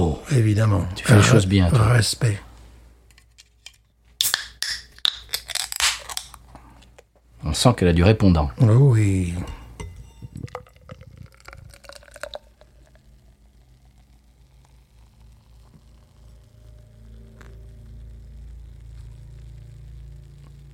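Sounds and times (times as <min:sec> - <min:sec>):
speech: 0:00.2 - 0:02.5, 0:07.5 - 0:09.6
beer being poured into a glass: 0:09.2 - 0:17.6
glass clinks and knocks: 0:09.5 - 0:10.9.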